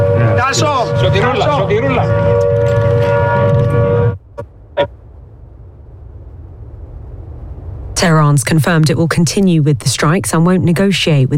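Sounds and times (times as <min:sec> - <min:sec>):
air raid warning siren wailing at a British military base in Cyprus: 0:00.0 - 0:04.9
speech: 0:00.5 - 0:03.8, 0:04.4 - 0:05.0, 0:08.0 - 0:11.3.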